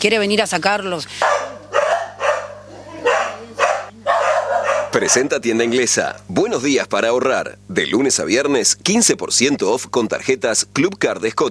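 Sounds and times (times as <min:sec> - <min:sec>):
speech: 0:00.0 - 0:01.5, 0:04.9 - 0:11.4
dog barking: 0:01.2 - 0:05.9.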